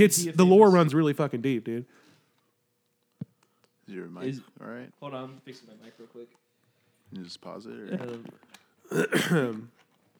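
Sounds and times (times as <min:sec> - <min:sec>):
speech: 0:00.0 - 0:02.1, 0:03.9 - 0:06.4, 0:07.1 - 0:09.8
gravelly throat clearing: 0:08.9 - 0:09.7.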